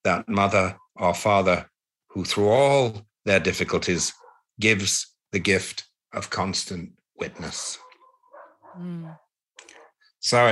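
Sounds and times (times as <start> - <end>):
speech: 0.0 - 7.8, 8.8 - 9.2, 10.2 - 10.4
dogs barking outside: 4.0 - 4.6, 7.2 - 10.1.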